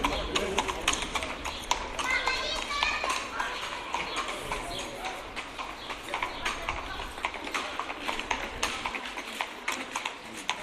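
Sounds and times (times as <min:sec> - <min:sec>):
Percheron horse hooves clip-clopping on a hard surface pulling cart: 0:00.0 - 0:10.6
birds chirping: 0:00.0 - 0:10.6
cart rattling: 0:00.0 - 0:10.6.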